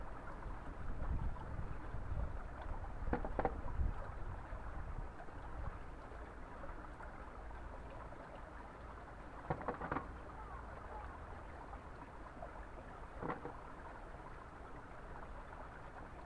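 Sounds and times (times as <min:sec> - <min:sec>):
flowing spring water rushing over daikon radishes being washed: 0:00.0 - 0:16.2.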